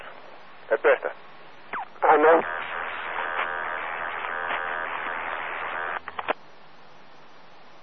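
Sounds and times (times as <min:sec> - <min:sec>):
radio interference buzzing from another station's signal: 0:00.8 - 0:06.4
radio crackling bursts: 0:01.7 - 0:06.4.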